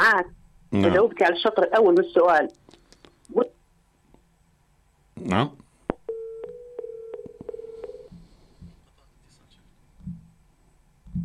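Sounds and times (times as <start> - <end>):
speech: 0.1 - 2.7, 3.3 - 3.6, 5.2 - 5.6
telephone line tone as a phone-in call is cut off: 6.1 - 8.1
low thumps: 10.0 - 10.4.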